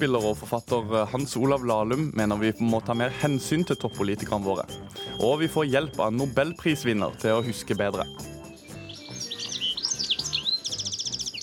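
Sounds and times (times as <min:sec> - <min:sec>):
speech: 0:00.0 - 0:08.4
birdsong chirping with warbling trills: 0:04.9 - 0:11.4.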